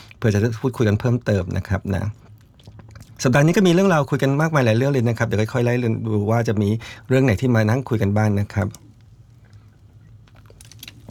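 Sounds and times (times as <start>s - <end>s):
low steady hum: 0.0s - 11.0s
speech: 0.2s - 2.3s, 3.2s - 8.8s
person sipping water: 1.8s - 3.6s, 8.7s - 11.0s.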